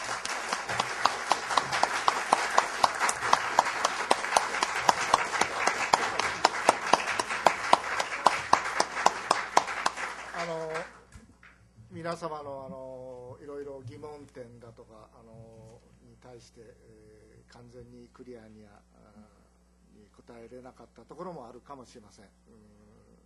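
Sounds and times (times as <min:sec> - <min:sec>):
session audience applause: 0:00.0 - 0:11.1
speech: 0:12.1 - 0:12.8, 0:16.2 - 0:19.3, 0:20.2 - 0:22.8.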